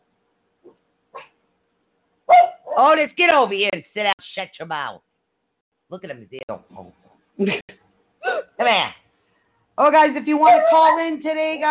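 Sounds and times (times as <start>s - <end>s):
dog barking: 0.6s - 1.4s, 2.3s - 2.8s, 10.4s - 11.1s
speech: 2.8s - 5.1s, 5.9s - 9.0s, 9.8s - 11.6s.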